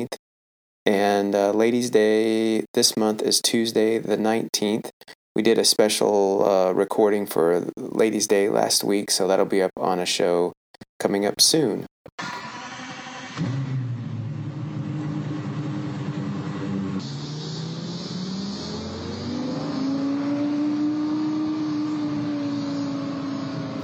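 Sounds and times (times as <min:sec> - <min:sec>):
speech: 0:00.8 - 0:12.5
Lexus LFA V10 sports car engine starting and roaring: 0:12.2 - 0:23.8.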